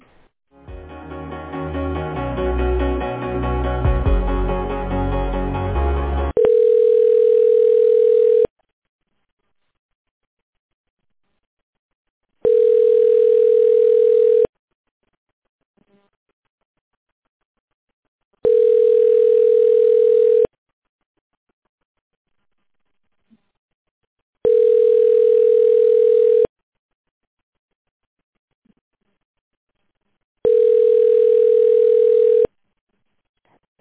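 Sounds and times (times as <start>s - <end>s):
music: 0.5s - 6.4s
telephone line beeps during a call transfer: 6.4s - 8.5s, 12.5s - 14.5s, 18.5s - 20.5s, 24.5s - 26.5s, 30.5s - 32.5s.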